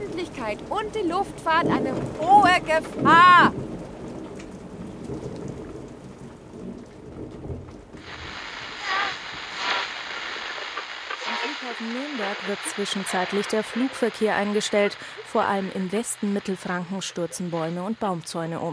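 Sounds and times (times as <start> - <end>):
heavy rain downpour during a thunderstorm in Franconia Germany: 0.0 - 18.7
rolling thunder during a thunderstorm in Franconia Germany: 0.1 - 11.5
speech: 0.4 - 3.7, 11.8 - 18.7.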